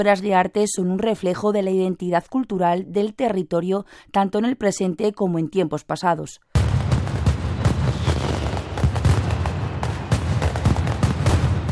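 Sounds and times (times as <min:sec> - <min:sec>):
speech: 0:00.0 - 0:06.8
mascletà firecracker barrage at the Fallas festival in Valencia Spain: 0:06.5 - 0:11.7.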